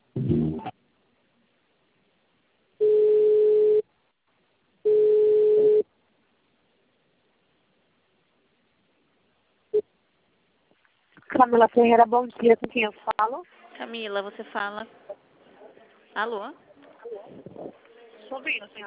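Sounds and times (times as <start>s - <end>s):
speech: 0.3s - 0.8s, 11.5s - 15.0s, 16.2s - 16.6s, 18.3s - 18.8s
electronic telephone tones while a call is being transferred: 2.8s - 3.8s, 4.9s - 5.8s
telephone line noise: 4.9s - 5.8s.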